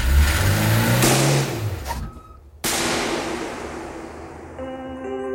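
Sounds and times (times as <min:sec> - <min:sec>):
car engine revving in front of a school in Antibes: 0:00.0 - 0:01.9
sharp bang: 0:02.6 - 0:05.2.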